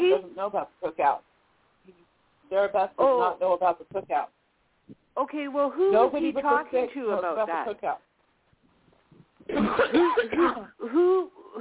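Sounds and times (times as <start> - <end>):
speech: 0.4 - 8.1, 9.4 - 11.6
person with an allergy-related hack coughing: 9.5 - 11.6.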